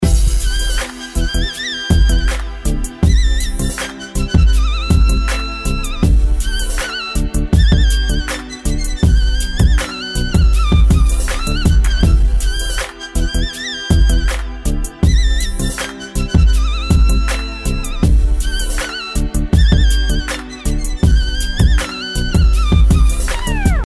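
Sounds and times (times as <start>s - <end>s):
flute: 0.0s - 23.8s.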